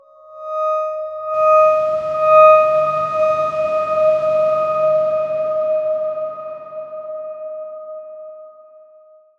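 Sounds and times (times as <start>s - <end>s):
Darkswarm synth note D sharp five: 1.4s - 7.1s.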